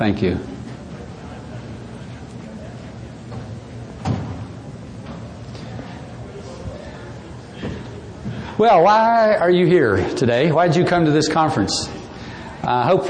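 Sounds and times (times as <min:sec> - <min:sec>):
speech: 0:00.0 - 0:00.5, 0:08.6 - 0:12.0, 0:12.7 - 0:13.0
indistinct voices in a large hall: 0:00.0 - 0:13.0
door closing with a solid thud: 0:03.3 - 0:04.6.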